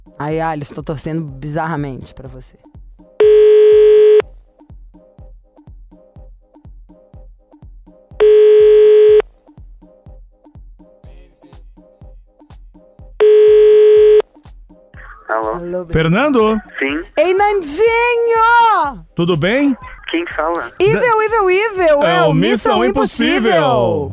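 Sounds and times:
speech: 0.1s - 2.7s, 15.7s - 24.1s
telephone ringback tone on an outgoing call: 3.2s - 4.2s, 8.2s - 9.2s, 13.2s - 14.2s.

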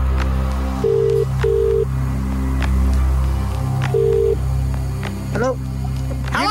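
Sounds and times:
low hum: 0.0s - 6.4s
telephone line ringing: 0.8s - 1.9s, 4.0s - 4.4s.

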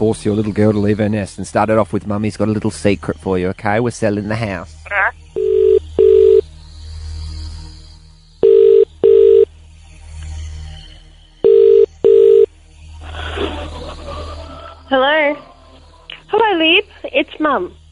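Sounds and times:
speech: 0.0s - 5.2s, 14.9s - 15.5s, 16.3s - 17.8s
low hum of telephone line noise: 4.9s - 6.5s, 8.4s - 9.5s, 11.4s - 12.5s
phone call double-pulse ringing tone through the line: 5.4s - 6.4s, 8.4s - 9.5s, 11.4s - 12.5s
laughter: 13.0s - 15.8s.

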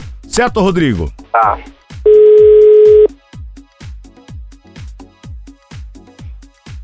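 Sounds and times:
speech: 0.4s - 2.2s
telephone tones while placing a call: 1.4s - 3.1s.

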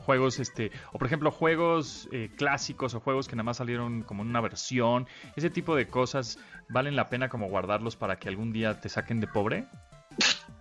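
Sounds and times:
speech: 0.1s - 10.3s
person sneezing: 10.2s - 10.5s.

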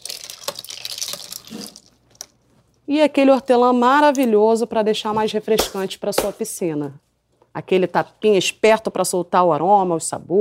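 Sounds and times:
spoon stirring a drink topped with citrus soda: 0.0s - 2.3s
speech: 2.9s - 7.0s, 7.6s - 10.4s.

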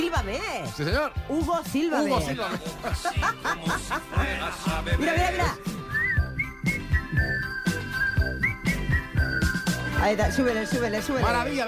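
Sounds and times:
upbeat instrumental backing with a bouncing beat: 0.0s - 11.6s
speech: 0.1s - 5.8s, 10.0s - 11.6s
laughter: 2.4s - 5.3s
whistled melody of a TV series closing theme: 5.6s - 11.5s.

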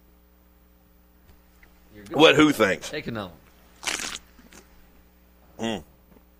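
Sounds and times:
speech: 2.0s - 3.4s, 5.6s - 5.9s
short noisy slurping sip: 3.6s - 4.8s.

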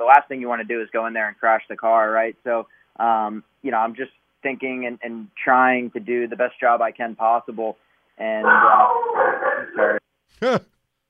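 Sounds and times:
speech: 0.0s - 10.8s
dog barking: 8.5s - 10.0s.

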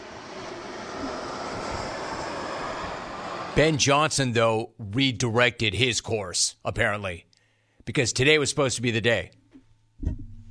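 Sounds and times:
jet aircraft flying overhead: 0.0s - 6.0s
speech: 3.6s - 7.3s, 7.9s - 9.4s.

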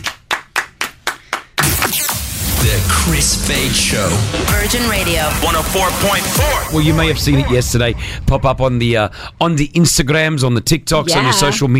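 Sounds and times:
people clapping: 0.0s - 2.0s
speech: 3.1s - 11.7s.

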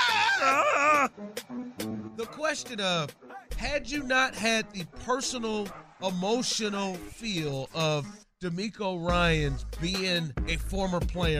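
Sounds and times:
man screaming a loud strained cry: 0.0s - 1.1s
speech: 0.4s - 11.3s.

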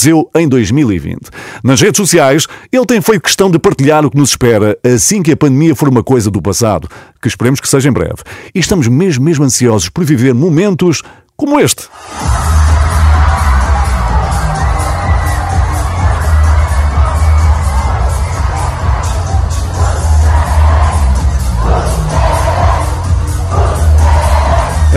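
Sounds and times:
speech: 0.0s - 13.0s
large crowd cheering and shouting at a DJ event: 11.9s - 24.9s
loud thumping bass beat at a DJ event: 12.1s - 24.9s.

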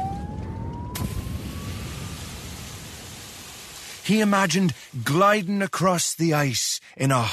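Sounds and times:
fire engine siren wailing: 0.0s - 3.0s
speech: 4.0s - 7.3s.

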